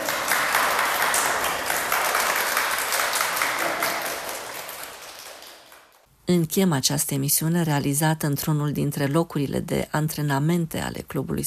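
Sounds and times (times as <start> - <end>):
crowd applauding: 0.0 - 6.0
speech: 6.3 - 11.4.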